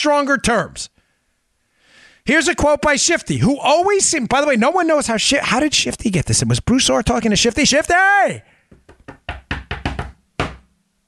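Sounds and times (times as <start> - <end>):
speech: 0.0 - 0.9, 2.2 - 8.5
person knocking on a hard surface: 8.7 - 10.7.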